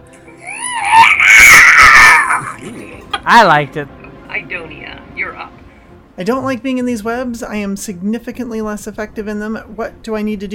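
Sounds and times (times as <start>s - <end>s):
person's voice imitating a spider screeching in pain: 0.4s - 2.6s
speech: 3.3s - 4.9s, 6.2s - 10.5s.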